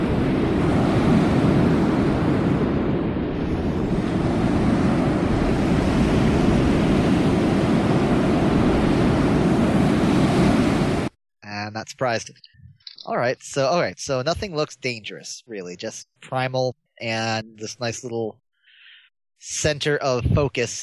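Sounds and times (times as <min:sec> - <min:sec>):
gusty wind noise: 0:00.0 - 0:11.1
roaring ocean surf of breaking waves: 0:00.0 - 0:11.1
speech: 0:11.9 - 0:18.4, 0:19.4 - 0:20.8.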